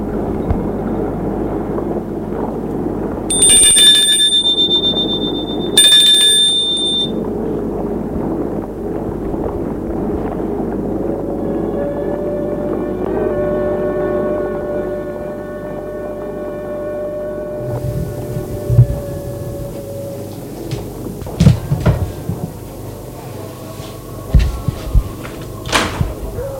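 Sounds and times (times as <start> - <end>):
low steady hum: 0.0 - 26.5
electric doorbell ringing: 3.3 - 7.2.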